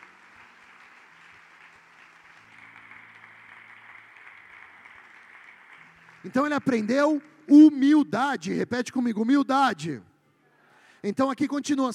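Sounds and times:
audience applauding: 0:00.0 - 0:07.9
speech: 0:06.2 - 0:10.1, 0:11.0 - 0:11.9.

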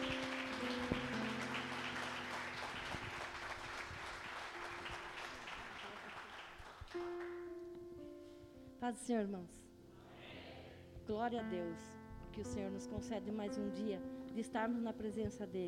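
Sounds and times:
church audience applauding a woman minister: 0:00.0 - 0:07.4
speech: 0:08.8 - 0:09.6, 0:11.1 - 0:15.6.

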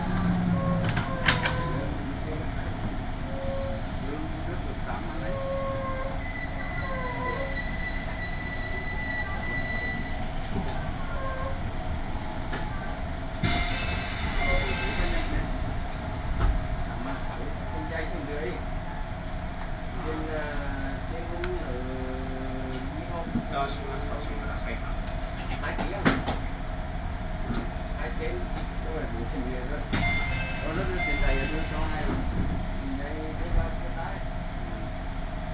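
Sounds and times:
local train wheels rumbling on a main line: 0:00.0 - 0:35.5.

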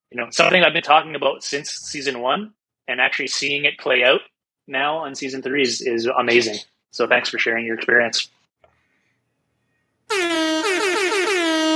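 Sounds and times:
speech: 0:00.2 - 0:08.4, 0:10.1 - 0:10.6
loud sustained air horn blast with pulsing stutters: 0:10.1 - 0:11.7.

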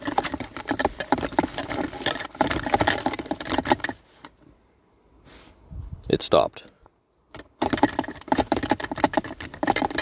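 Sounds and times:
scratching and rustling in the back of a car, possibly mice: 0:00.0 - 0:04.4, 0:07.3 - 0:10.0
faint scrape: 0:05.2 - 0:05.9
speech: 0:06.2 - 0:06.8.

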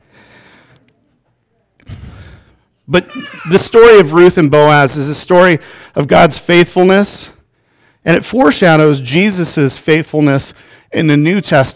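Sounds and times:
heavy breathing: 0:00.0 - 0:00.9, 0:01.8 - 0:02.8, 0:05.6 - 0:06.0, 0:10.5 - 0:10.9
loud gusty breath puff rumbling against the microphone: 0:01.8 - 0:02.6
speech: 0:02.9 - 0:07.4, 0:08.0 - 0:11.7.

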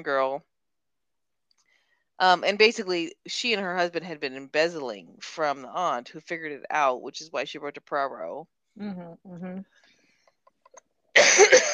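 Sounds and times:
speech: 0:00.0 - 0:00.5, 0:02.2 - 0:09.8
coughing: 0:11.2 - 0:11.7.

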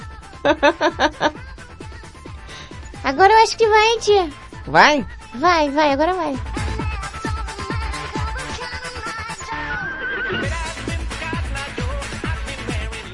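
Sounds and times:
loud upbeat song with steady thumping beat: 0:00.0 - 0:13.1
laughter: 0:00.4 - 0:01.4
speech: 0:00.4 - 0:01.4, 0:03.0 - 0:06.5
horse whinny in a song: 0:09.5 - 0:10.5.

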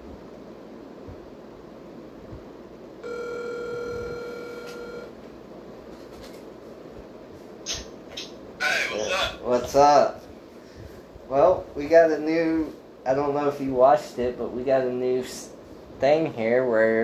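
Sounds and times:
outgoing phone ringback tone: 0:03.0 - 0:05.1
speech: 0:09.5 - 0:10.2, 0:11.3 - 0:17.0.

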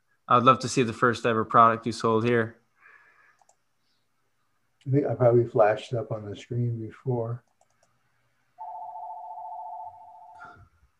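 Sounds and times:
speech: 0:00.3 - 0:02.6, 0:04.8 - 0:07.5
electronic telephone ring with a warbling tone: 0:08.6 - 0:10.6.

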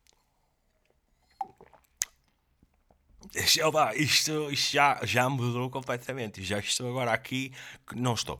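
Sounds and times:
person sipping water: 0:00.0 - 0:04.0
speech: 0:03.3 - 0:08.3.

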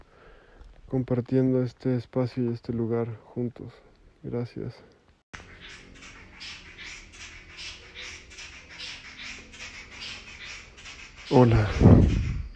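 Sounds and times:
speech: 0:00.9 - 0:05.0, 0:11.3 - 0:12.2
chorus of birds chirping and calling before dawn: 0:05.4 - 0:12.5.

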